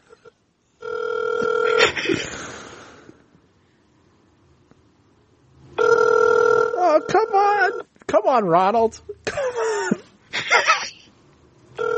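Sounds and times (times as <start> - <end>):
telephone ringing loudly through a call line: 0.8 - 2.0, 5.8 - 7.8, 11.8 - 11.9
speech: 8.3 - 9.4.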